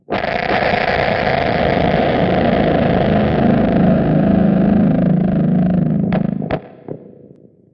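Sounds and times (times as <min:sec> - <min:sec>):
horror guitar noise: 0:00.0 - 0:07.4.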